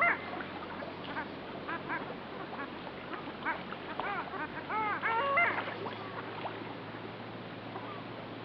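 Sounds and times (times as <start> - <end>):
long-tailed ducks giving soft overlapping yodelling calls: 0.0 - 6.3.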